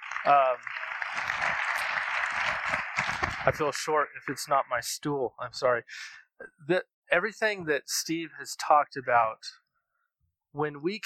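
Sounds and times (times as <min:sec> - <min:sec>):
audience applause: 0:00.0 - 0:04.5
speech: 0:00.2 - 0:02.8, 0:03.4 - 0:09.6, 0:10.5 - 0:11.0.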